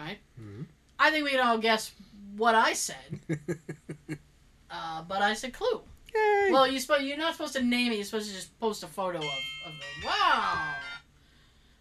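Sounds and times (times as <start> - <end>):
speech: 1.0 - 3.8, 4.8 - 10.9
laughter: 3.2 - 4.2
doorbell chime: 9.2 - 11.0.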